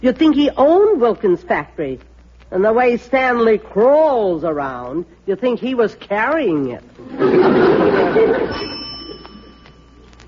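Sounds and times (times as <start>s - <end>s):
speech: 0.0s - 8.8s
laughter: 7.0s - 9.6s
house doorbell ring: 8.4s - 10.2s.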